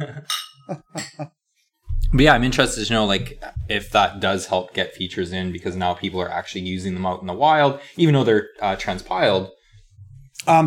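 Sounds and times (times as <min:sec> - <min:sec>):
glasses clinking in a toast: 0:00.2 - 0:01.3
speech: 0:02.2 - 0:09.6, 0:10.4 - 0:10.6.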